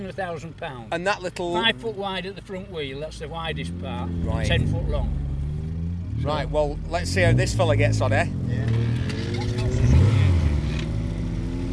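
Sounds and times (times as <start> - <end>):
speech: 0.0 - 5.3, 6.2 - 9.1
small race car with three-cylinder engine accelerating: 3.4 - 11.7.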